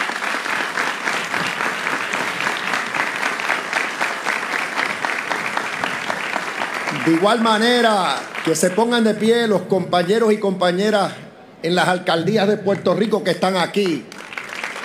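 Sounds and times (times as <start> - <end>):
large audience applauding at outdoor celebration: 0.0 - 10.2, 13.7 - 14.8
speech: 7.1 - 14.1.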